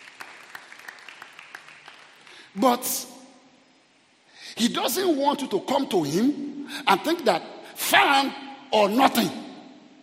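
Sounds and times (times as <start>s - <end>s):
congregation clapping hands during a church service: 0.0s - 2.6s
speech: 2.6s - 3.2s, 4.6s - 9.4s.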